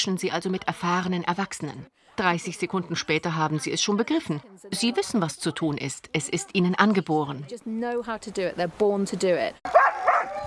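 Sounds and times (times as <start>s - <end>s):
speech: 0.0s - 10.4s
pack of Alaskan Husky sled dogs barking and yipping: 9.7s - 10.4s
Alaskan Husky sled dogs howling whines: 9.8s - 10.4s.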